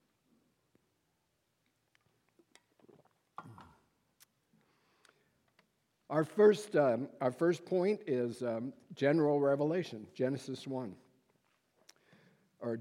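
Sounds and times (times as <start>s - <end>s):
person sipping a drink: 2.5s - 5.4s
person swallowing: 2.8s - 4.0s
speech: 6.1s - 11.0s.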